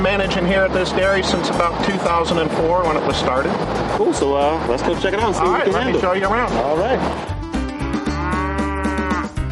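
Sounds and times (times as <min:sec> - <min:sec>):
speech: 0:00.2 - 0:07.3
dairy cows mooing on a dairy farm: 0:07.7 - 0:09.4.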